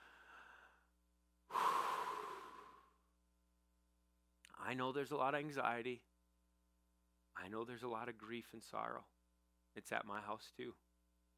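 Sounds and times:
deep breath taken during a church service: 0.0 - 3.1
speech: 4.7 - 6.1, 7.4 - 9.1, 9.8 - 10.8.

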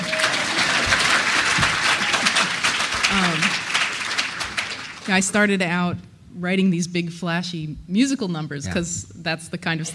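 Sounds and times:
audience applause: 0.0 - 5.3
speech: 5.1 - 9.9.

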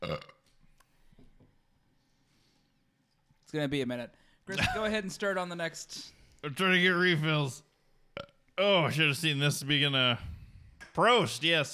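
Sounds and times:
loud low rumbling burp: 0.0 - 0.5, 8.2 - 8.4
speech: 3.5 - 10.3, 11.0 - 11.7.

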